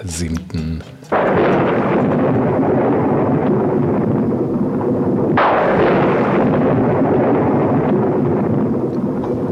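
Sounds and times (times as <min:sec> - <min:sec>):
speech: 0:00.0 - 0:02.7
thunder rumbling deeply with a sharp loud crack: 0:01.1 - 0:09.5.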